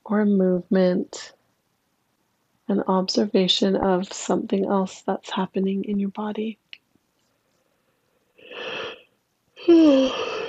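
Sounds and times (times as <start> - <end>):
speech: 0.1 - 1.4, 2.7 - 6.6, 9.6 - 10.4
person yawning with a low voiced groan: 9.6 - 10.4.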